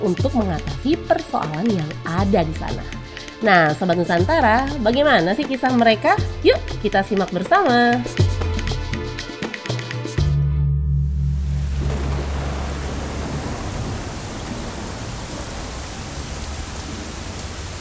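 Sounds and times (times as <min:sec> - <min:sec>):
speech: 0:00.0 - 0:08.3
musical passage: 0:10.3 - 0:14.1
low droning tone: 0:10.4 - 0:14.4
heavy rain downpour: 0:11.1 - 0:17.7.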